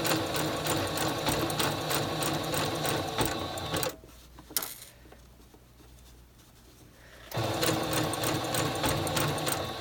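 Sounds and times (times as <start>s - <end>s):
sewing machine stitching a blind hem along a fabric fold: 0.0s - 4.0s, 7.2s - 9.7s.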